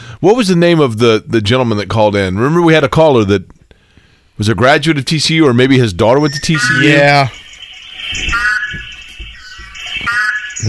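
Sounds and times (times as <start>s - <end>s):
speech: 0.2s - 3.6s, 4.4s - 7.4s, 8.1s - 8.8s
horned frog mating call: 6.2s - 10.6s.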